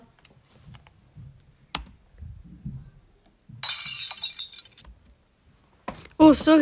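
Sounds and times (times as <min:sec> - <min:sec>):
glass clink: 0:03.6 - 0:04.8
drinking glass tipping over and breaking: 0:03.6 - 0:04.9
speech: 0:06.3 - 0:06.6.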